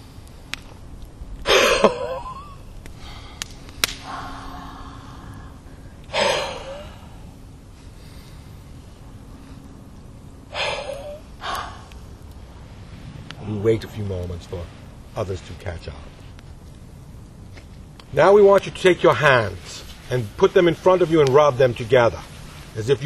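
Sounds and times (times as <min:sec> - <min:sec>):
deep forceful breaths during a breathing exercise: 0:02.9 - 0:13.6
speech: 0:13.6 - 0:16.1, 0:18.1 - 0:23.0.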